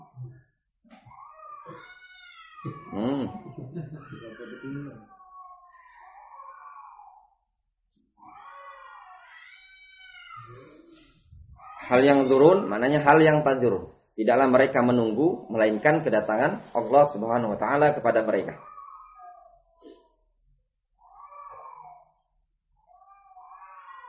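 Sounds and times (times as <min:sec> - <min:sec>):
cat meowing in long wavering moan-like cries: 0:01.1 - 0:03.1, 0:04.0 - 0:07.3, 0:08.2 - 0:10.9, 0:18.6 - 0:19.8, 0:21.0 - 0:22.1, 0:22.9 - 0:24.0
speech: 0:02.6 - 0:05.2, 0:11.9 - 0:18.7
laughter: 0:02.7 - 0:05.0.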